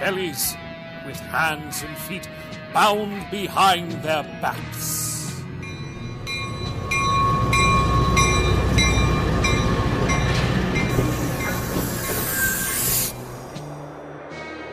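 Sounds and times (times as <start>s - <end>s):
speech: 0.0s - 5.2s
passenger train rumbling along the rails: 4.9s - 14.6s
brief high train wheel squeal: 6.4s - 13.7s
rising hiss: 11.1s - 13.4s.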